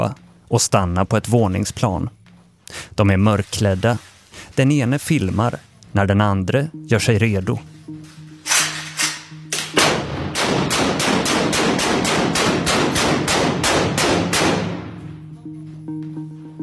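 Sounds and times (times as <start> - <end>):
speech: 0.0 - 7.7
loud gunshots fired into apartment door: 9.7 - 15.0.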